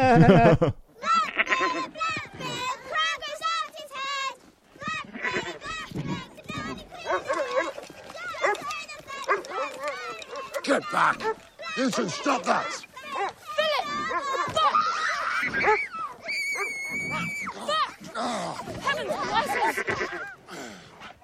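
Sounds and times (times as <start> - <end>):
laughter: 0.0 - 0.8, 17.0 - 20.5
speech: 0.1 - 0.8, 11.0 - 12.9
goat bleating: 1.0 - 2.7, 5.0 - 5.8, 19.2 - 20.4
agitated shouting voices in a film scene: 1.0 - 21.2.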